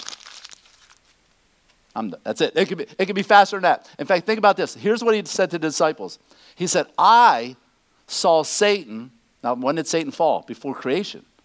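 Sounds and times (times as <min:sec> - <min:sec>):
piece of paper crumpling: 0:00.0 - 0:01.2
speech: 0:02.0 - 0:11.3.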